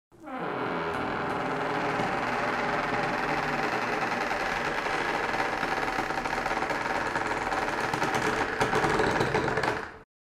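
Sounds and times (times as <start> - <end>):
door sound: 0.2 - 10.0.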